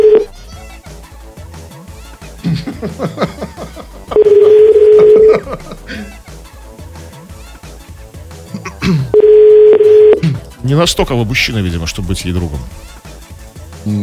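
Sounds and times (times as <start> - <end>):
phone line ringback tone: 0.0 - 0.3, 4.2 - 5.4, 9.1 - 10.2
laughter: 2.3 - 6.4, 8.5 - 9.2
speech: 2.8 - 3.3, 10.7 - 12.9.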